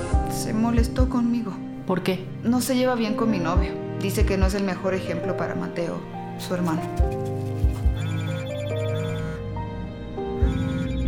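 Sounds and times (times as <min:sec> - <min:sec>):
speech: 0:00.4 - 0:07.8
telephone ringing with a melodic electronic ringtone: 0:07.7 - 0:11.0.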